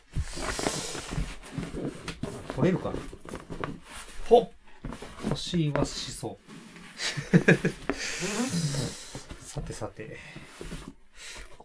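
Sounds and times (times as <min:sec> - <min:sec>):
heavy cardboard box scraping and rustling: 0:00.0 - 0:08.0, 0:08.6 - 0:11.5
speech: 0:02.6 - 0:03.2, 0:04.3 - 0:04.6, 0:05.4 - 0:06.4, 0:07.4 - 0:09.0, 0:09.6 - 0:10.7
laughter: 0:07.0 - 0:07.8.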